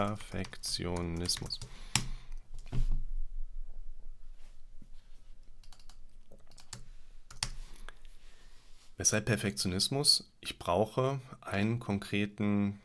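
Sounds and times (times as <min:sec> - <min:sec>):
speech: 0:00.0 - 0:02.0, 0:09.0 - 0:12.8
computer keyboard typing: 0:00.0 - 0:02.7, 0:05.6 - 0:07.6.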